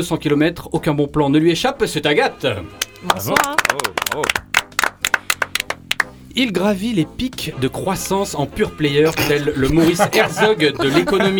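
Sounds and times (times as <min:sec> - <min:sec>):
speech: 0:00.0 - 0:04.4, 0:06.4 - 0:11.3
small crowd audience clapping: 0:02.7 - 0:06.2
laughter: 0:08.1 - 0:11.3.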